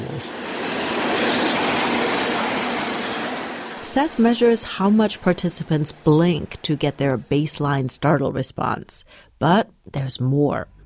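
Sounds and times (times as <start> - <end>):
train passing on railway track with rumbling wheels and rattling cars: 0.0 - 8.6
speech: 4.0 - 10.7.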